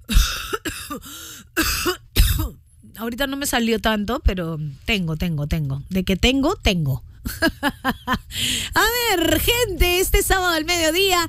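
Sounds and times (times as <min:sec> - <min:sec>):
dry raspy coughs: 0:00.0 - 0:02.6
speech: 0:03.0 - 0:11.2.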